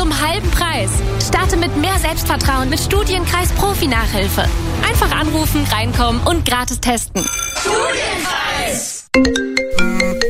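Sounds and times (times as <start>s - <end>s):
speech: 0.2s - 9.5s
mobile phone ringtone for an unknown caller: 7.2s - 7.8s.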